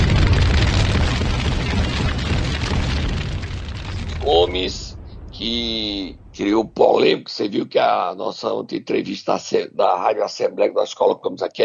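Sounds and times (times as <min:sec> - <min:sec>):
crackling debris from bomb explosion: 0:00.0 - 0:07.1
bomb explosion: 0:00.0 - 0:07.6
speech: 0:06.4 - 0:11.6.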